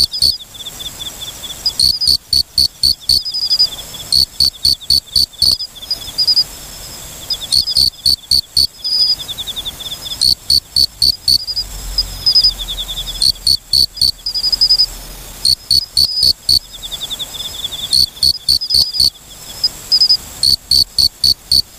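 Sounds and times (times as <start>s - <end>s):
Mori-okame cricket chirping in sharp loud clicking pulses: 0.0s - 21.7s.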